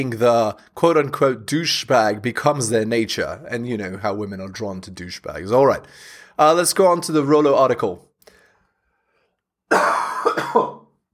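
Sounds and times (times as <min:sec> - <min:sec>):
speech: 0:00.0 - 0:08.1, 0:09.7 - 0:10.8
harsh raspy coughing: 0:09.7 - 0:11.0.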